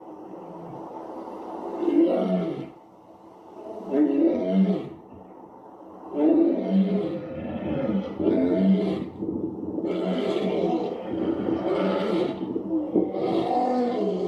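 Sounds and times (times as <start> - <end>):
lion roaring: 3.7 - 5.0, 6.1 - 14.2.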